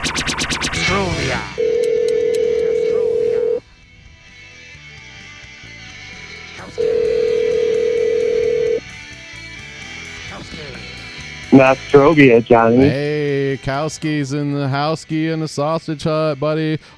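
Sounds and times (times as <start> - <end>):
speech: 0.9 - 1.7, 11.6 - 16.9
telephone ringback tone while a call is placed: 1.6 - 3.6, 6.8 - 8.8.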